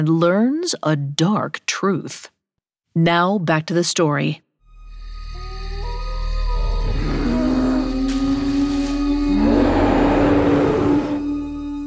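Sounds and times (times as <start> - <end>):
speech: 0.0 - 4.4
low eerie drone: 4.7 - 11.8
deep monstrous roars in a forest: 6.7 - 11.4.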